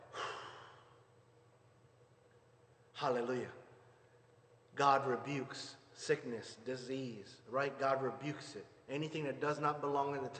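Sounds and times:
person exhaling during a guided worship breathing exercise: 0.0 - 1.0
speech: 3.0 - 3.6, 4.8 - 10.3.

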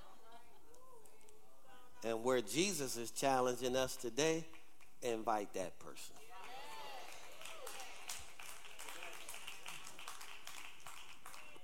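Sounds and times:
speech: 2.0 - 6.3
audience hand claps: 6.4 - 11.6.

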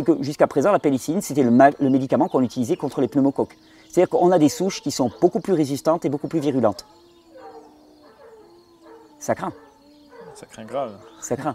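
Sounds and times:
speech: 0.0 - 7.0, 9.2 - 9.6, 10.4 - 11.5
dog barking: 4.4 - 5.6, 6.2 - 11.5.

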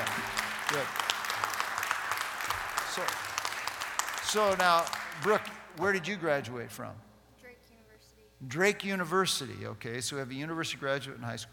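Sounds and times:
audience applauding: 0.0 - 6.1
speech: 0.7 - 1.0, 3.0 - 3.2, 4.3 - 7.1, 8.4 - 11.5.

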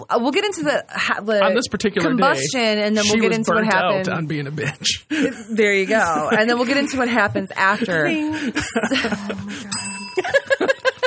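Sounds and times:
speech: 0.0 - 10.6
several people chuckling and laughing: 4.2 - 11.0
small bell ringing: 9.7 - 11.0.

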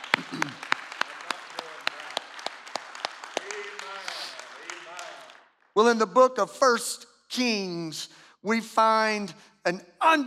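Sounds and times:
audience clapping hands in a steady rhythm: 0.0 - 6.1
speech: 5.8 - 10.2.

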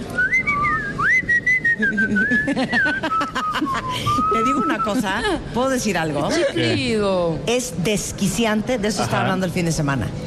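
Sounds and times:
noise: 0.0 - 10.2
person whistling a wavering melody: 0.1 - 4.7
laughter: 1.8 - 5.5
speech: 1.8 - 10.2.

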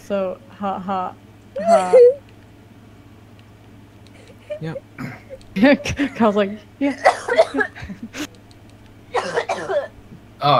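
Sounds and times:
speech: 0.1 - 2.2, 4.6 - 8.2
person coughing up mucus: 5.0 - 5.3, 6.9 - 8.0, 9.2 - 9.9.

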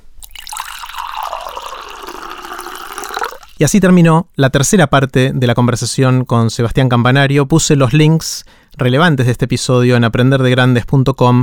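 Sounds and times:
water pouring into a glass: 0.0 - 3.8
speech: 3.6 - 11.4.

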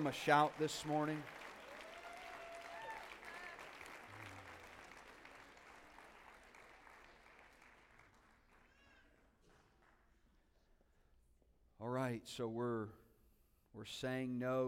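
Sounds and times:
speech: 0.0 - 1.4, 12.1 - 13.0, 13.8 - 14.6
roomful of people applauding: 0.0 - 10.0.

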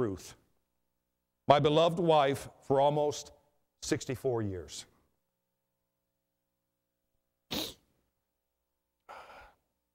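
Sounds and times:
speech: 0.0 - 0.4, 1.5 - 4.9
sharp breathy gasp before a sneeze: 9.0 - 9.7.

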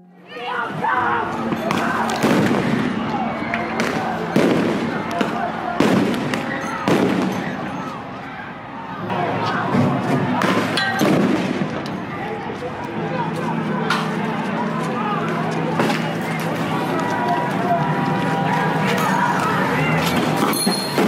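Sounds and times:
crowd noise of protesters: 0.0 - 21.0
people talking: 0.0 - 21.0
police firing tear gas and rubber bullets at protesters: 1.4 - 7.8, 9.6 - 12.2, 20.1 - 21.0.

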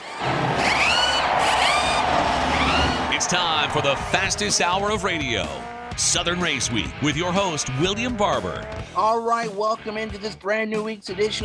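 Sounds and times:
race car engines starting and revving: 0.0 - 8.9
speech: 3.3 - 11.4.

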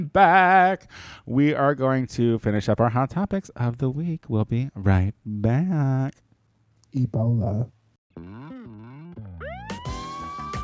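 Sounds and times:
speech: 0.0 - 6.2, 6.9 - 8.6
ambulance siren wailing: 9.4 - 10.6.

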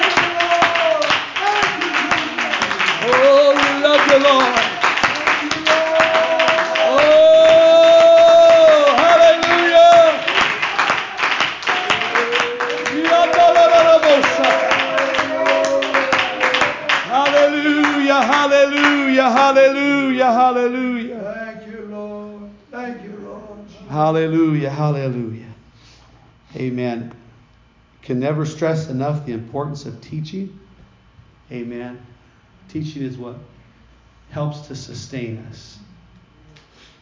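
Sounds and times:
voices calling out: 0.0 - 19.9
crowd clapping hands: 0.0 - 20.1
voices singing: 0.0 - 24.3
speech: 26.6 - 27.2, 28.0 - 30.6, 31.5 - 32.1, 32.7 - 33.5, 34.3 - 35.9.

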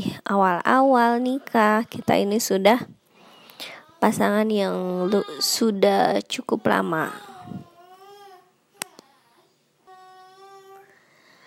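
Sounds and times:
speech: 0.0 - 3.0, 3.6 - 7.7
baby crying after waking up: 4.8 - 5.6, 6.6 - 11.0.

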